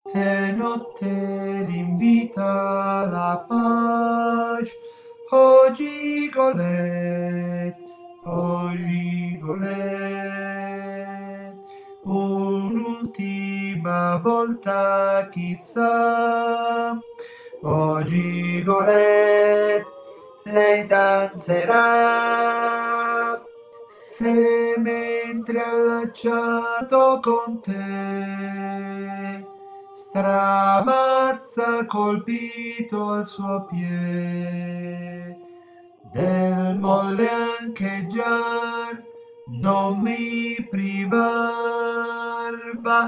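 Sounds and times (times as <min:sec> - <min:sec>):
altos singing operetta: 0:00.0 - 0:43.0.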